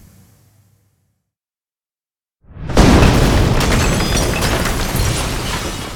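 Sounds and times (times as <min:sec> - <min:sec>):
dynamite blast under a school wing: 0:02.4 - 0:05.8
crackling and snapping of collapsing wood, glass and iron: 0:03.6 - 0:05.9.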